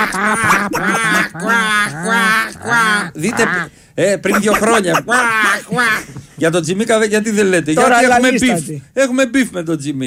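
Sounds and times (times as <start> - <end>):
human voices imitating nasal duck quacks: 0.0 - 6.2
speech: 0.0 - 10.0.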